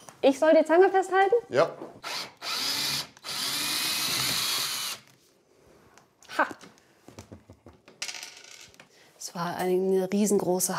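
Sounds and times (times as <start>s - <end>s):
speech: 0.2s - 1.9s, 9.4s - 10.7s
cordless screwdriver driving a screw: 2.0s - 5.1s.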